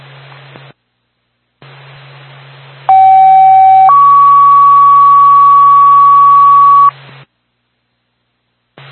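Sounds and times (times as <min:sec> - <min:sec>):
faint radio static hiss: 0:00.0 - 0:08.9
two-tone fire department dispatch page over a radio channel: 0:02.9 - 0:06.9.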